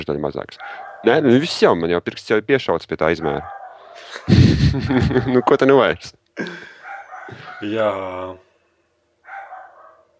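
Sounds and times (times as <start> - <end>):
speech: 0.0 - 6.7, 7.3 - 8.4
dog barking: 0.6 - 1.4, 3.2 - 4.0, 6.8 - 7.7, 9.2 - 10.1
laughter: 4.0 - 5.5
dog huffing: 6.8 - 7.6.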